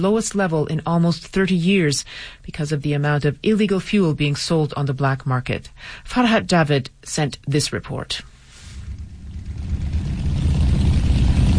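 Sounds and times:
speech: 0.0s - 8.3s
many motorbike engines idling and revving: 8.9s - 11.5s.

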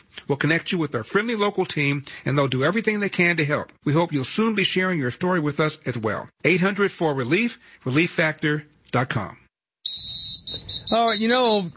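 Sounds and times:
speech: 0.2s - 11.7s
shrill steady high-pitched whistle: 9.8s - 11.7s.

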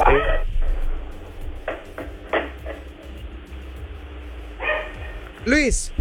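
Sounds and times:
steady hum of noise: 0.0s - 5.9s
dog barking through narrow-band phone line from a steelworks workplace: 4.6s - 5.3s
speech: 5.5s - 5.9s.

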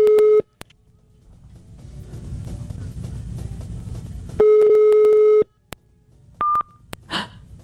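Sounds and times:
telephone busy signal from a rejected call: 0.0s - 0.5s, 4.4s - 5.5s, 6.4s - 6.7s
low rumble: 0.6s - 7.6s.

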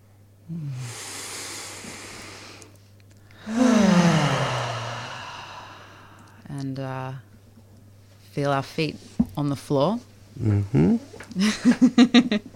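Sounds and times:
faint steady hum: 0.0s - 12.5s
speech: 0.5s - 0.9s, 6.8s - 7.3s, 8.4s - 12.5s
group taking a deep breath together: 0.5s - 6.5s
low voiced sigh: 3.4s - 6.5s.

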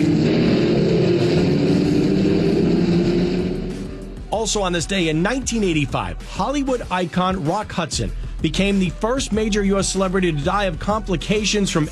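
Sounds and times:
car engine gently revving: 0.0s - 5.8s
speech: 4.4s - 11.9s.

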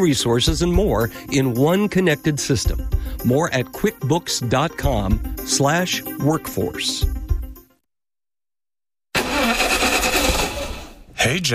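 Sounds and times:
speech: 0.0s - 7.2s, 11.2s - 11.5s
car engine struggling to start: 9.2s - 11.1s.

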